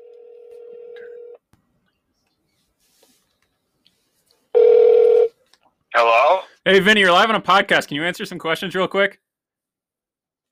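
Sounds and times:
phone line electronic ringback tone: 0:00.0 - 0:01.4, 0:04.6 - 0:05.3
speech: 0:06.7 - 0:09.2.

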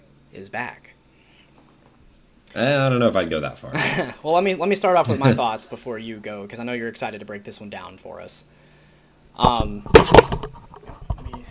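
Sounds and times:
speech: 0:00.4 - 0:01.0, 0:02.5 - 0:08.6, 0:09.4 - 0:10.4
podcast microphone being knocked: 0:09.4 - 0:11.4.

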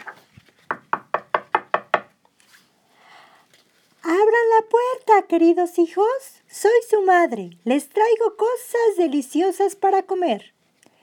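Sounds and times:
sharp knocking on a door: 0:00.0 - 0:02.1
speech: 0:04.6 - 0:10.6.

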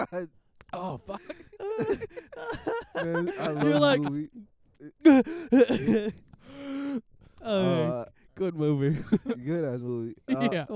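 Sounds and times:
laughter: 0:00.0 - 0:04.4, 0:05.1 - 0:06.2, 0:08.9 - 0:09.6, 0:10.3 - 0:10.7
speech: 0:00.0 - 0:10.7
person gasping for air and groaning after a dry swallow: 0:00.8 - 0:02.4, 0:05.0 - 0:08.0
long raspy breath: 0:05.2 - 0:05.6, 0:06.3 - 0:07.1.

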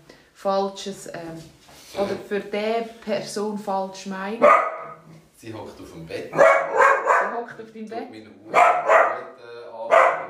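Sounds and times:
speech: 0:00.4 - 0:04.7, 0:05.4 - 0:06.8, 0:07.4 - 0:09.3
small dog barking loudly: 0:04.4 - 0:05.0, 0:06.3 - 0:07.4, 0:08.5 - 0:09.3, 0:09.9 - 0:10.2.

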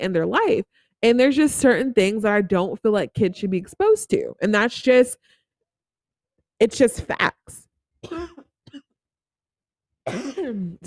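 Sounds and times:
speech: 0:00.0 - 0:05.4, 0:06.6 - 0:08.8, 0:10.1 - 0:10.8
person coughing harshly with a throat-clearing quality: 0:08.0 - 0:08.9, 0:10.1 - 0:10.8.

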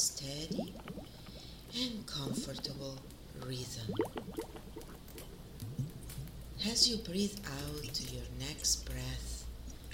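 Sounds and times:
speech: 0:00.0 - 0:01.1, 0:01.7 - 0:04.5, 0:06.6 - 0:09.4
flowing water: 0:00.0 - 0:05.9.

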